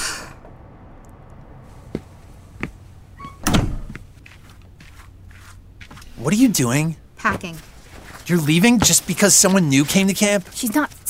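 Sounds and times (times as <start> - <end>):
door opening: 3.1 - 4.0
speech: 6.3 - 7.7, 8.3 - 11.0.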